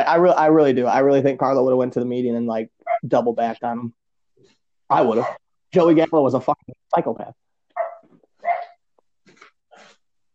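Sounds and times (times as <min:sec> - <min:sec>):
speech: 0:00.1 - 0:07.4
dog barking: 0:05.1 - 0:05.4, 0:07.8 - 0:08.8.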